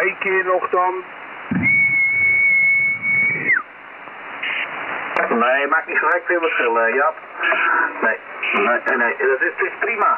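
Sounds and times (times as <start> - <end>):
speech: 0.2 - 1.8, 5.4 - 10.1
low rumble: 1.2 - 4.3
person whistling a long high note: 1.6 - 3.6.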